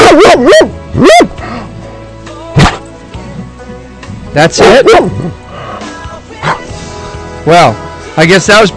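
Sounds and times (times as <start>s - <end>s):
dog barking with a wavering yodeling pitch: 0.0s - 1.2s, 4.6s - 5.4s
speech: 4.4s - 5.4s, 7.4s - 8.7s.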